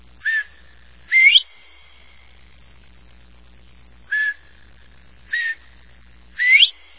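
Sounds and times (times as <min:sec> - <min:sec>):
bobwhite calling: 0:00.2 - 0:01.8, 0:04.1 - 0:04.7, 0:05.3 - 0:06.9.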